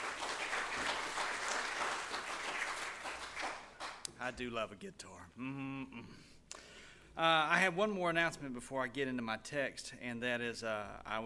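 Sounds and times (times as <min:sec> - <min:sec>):
large crowd applauding: 0:00.0 - 0:04.1
speech: 0:04.3 - 0:06.4, 0:07.2 - 0:11.2.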